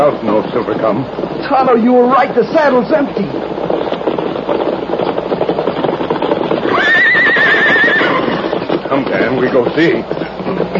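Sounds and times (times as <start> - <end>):
riderless horse hoofbeats: 0.0 - 10.7
speech: 0.1 - 3.9, 9.0 - 10.2
horse whinnying: 4.4 - 9.6.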